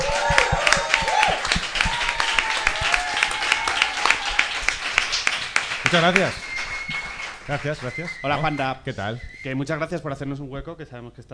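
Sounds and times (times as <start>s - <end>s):
whoops from a studio audience: 0.0s - 4.8s
studio audience applause welcoming a guest: 0.0s - 8.7s
speech: 5.9s - 6.4s, 7.5s - 11.3s.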